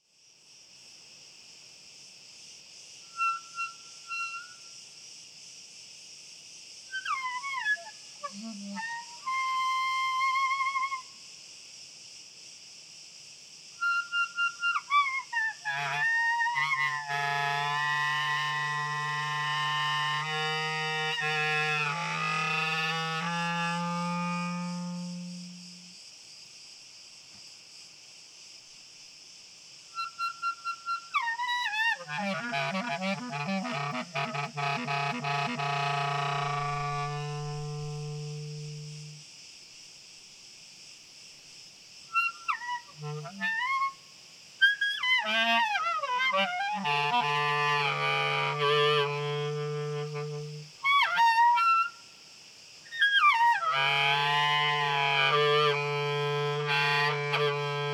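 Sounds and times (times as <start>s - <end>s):
crickets chirping with low, high and rough overtones: 0.0s - 57.9s.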